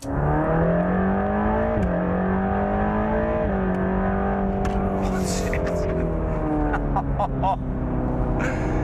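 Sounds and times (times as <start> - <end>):
Mercedes-AMG GT Black Series sports car engine accelerating hard: 0.0 - 8.8
laughter: 5.0 - 7.6.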